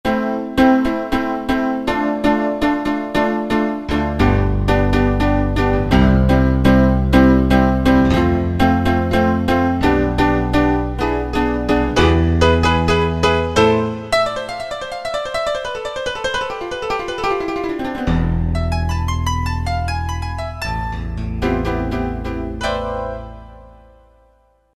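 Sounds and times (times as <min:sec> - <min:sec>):
piano preset demo: 0:00.1 - 0:24.7.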